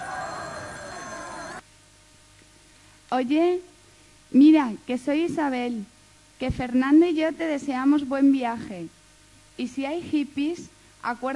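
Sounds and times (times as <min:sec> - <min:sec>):
telephone ringing: 0:00.0 - 0:01.6
faint hiss: 0:01.2 - 0:11.3
speech: 0:03.1 - 0:03.7, 0:04.3 - 0:09.0, 0:09.6 - 0:11.3.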